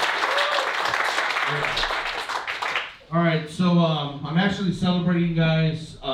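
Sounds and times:
crowd applause: 0.0s - 3.0s
faint whoops from the crowd: 0.2s - 0.9s
speech: 3.1s - 6.1s.

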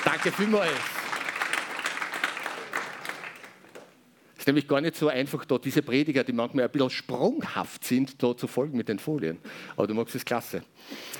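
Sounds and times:
church congregation applause: 0.0s - 3.9s
speech: 0.2s - 1.0s, 4.5s - 11.1s.

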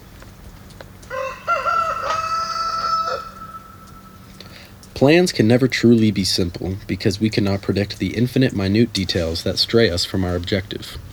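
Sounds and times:
faint low hum: 0.0s - 11.1s
rooster crowing: 1.1s - 4.4s
speech: 5.0s - 11.1s.

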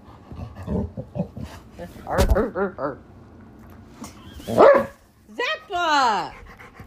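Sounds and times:
speech: 1.8s - 3.1s, 4.5s - 4.9s, 5.7s - 6.4s
dog barking after its toy is taken away: 4.5s - 5.0s.

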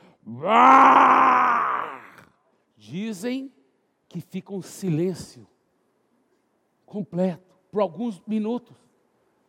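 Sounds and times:
speech: 0.3s - 1.0s, 3.1s - 5.5s, 6.9s - 8.8s
person voicing a growling roar imitating a lion: 0.3s - 2.3s.

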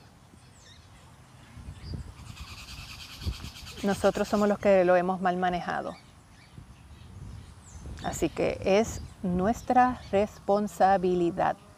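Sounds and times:
birds chirping: 0.0s - 11.7s
speech: 3.8s - 6.0s, 8.1s - 11.6s.

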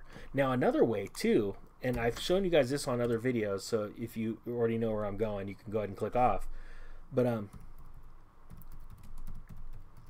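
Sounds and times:
speech: 0.3s - 7.6s
faint typing on a computer keyboard: 8.5s - 10.0s.

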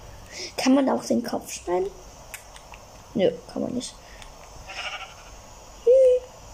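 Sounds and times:
speech: 0.6s - 2.1s, 3.2s - 4.0s
video game sheep with regrown wool bleating: 4.7s - 5.3s.

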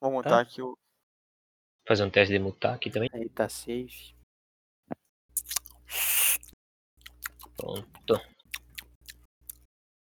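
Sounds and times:
speech: 0.2s - 0.8s, 1.9s - 4.2s, 7.6s - 8.3s
crunchy chewing of food: 5.3s - 9.7s.

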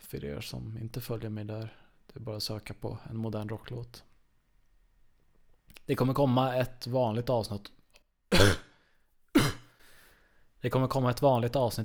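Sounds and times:
speech: 0.1s - 4.1s, 5.9s - 8.6s, 10.6s - 11.8s
harsh raspy throaty coughs: 8.3s - 9.9s.

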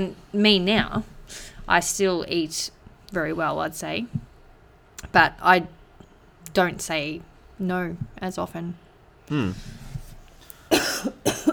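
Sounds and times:
speech: 0.0s - 4.3s, 5.1s - 5.8s, 6.5s - 9.8s
brief voiced throaty sound: 9.3s - 9.8s
harsh coughs: 10.7s - 11.5s.

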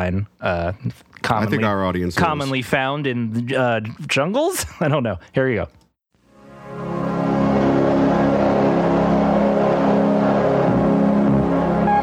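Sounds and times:
speech: 0.0s - 5.8s
1980 Mercury Lynx wagon engine droning: 7.0s - 12.0s.

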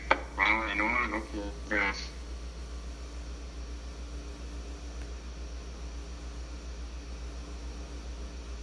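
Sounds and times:
steady low electrical hum: 0.0s - 8.6s
garbled choppy voice over a call line: 0.2s - 2.2s.

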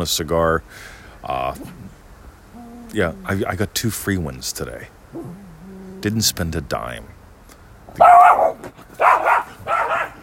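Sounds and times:
speech: 0.0s - 2.0s, 2.9s - 7.2s, 7.9s - 9.4s
dogs barking: 8.0s - 10.2s.

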